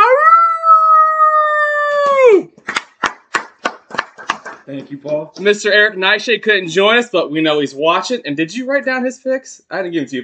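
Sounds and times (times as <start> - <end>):
wolf howling: 0.0 - 2.5
speech: 4.8 - 10.2.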